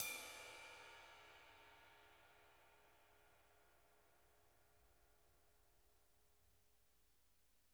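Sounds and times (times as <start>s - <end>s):
drum kit ride cymbal: 0.0s - 2.6s.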